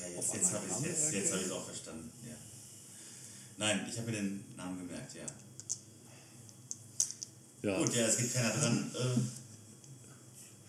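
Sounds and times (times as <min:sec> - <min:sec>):
low steady hum: 0:00.0 - 0:10.6
speech: 0:00.2 - 0:02.6, 0:03.6 - 0:05.5, 0:07.6 - 0:09.4
dice rattling and tumbling: 0:05.3 - 0:05.8, 0:06.7 - 0:07.3.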